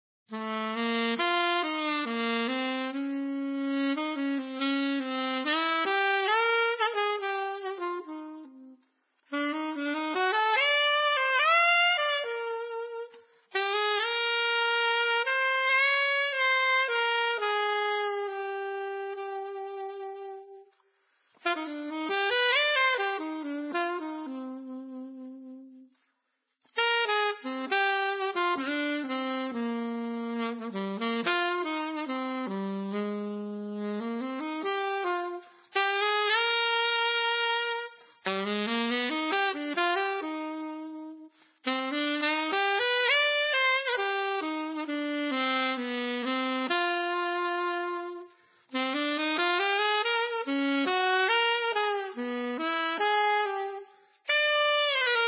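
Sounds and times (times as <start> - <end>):
saxophone playing an etude: 0.3 - 55.2.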